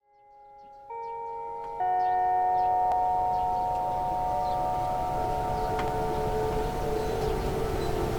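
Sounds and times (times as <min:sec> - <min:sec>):
noon time signal: 0:00.9 - 0:08.0.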